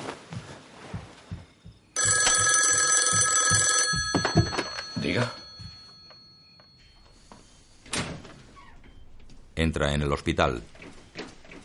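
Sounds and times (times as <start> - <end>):
telephone ringing at night: 2.0 - 7.2
speech: 9.6 - 10.8.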